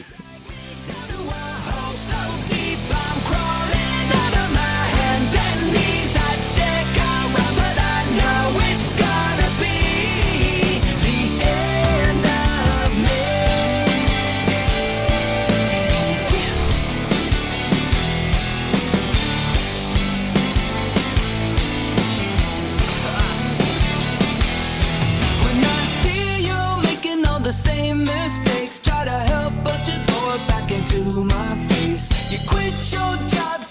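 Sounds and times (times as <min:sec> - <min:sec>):
punk rock song with driving drums and distorted guitars: 0:00.0 - 0:33.6.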